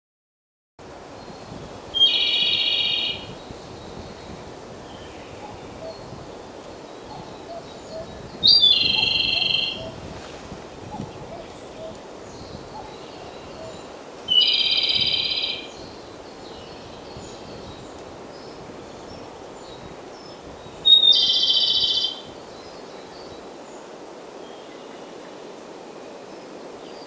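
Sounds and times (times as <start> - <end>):
Japanese robin: 1.2 - 4.4, 7.1 - 10.0, 10.9 - 23.4.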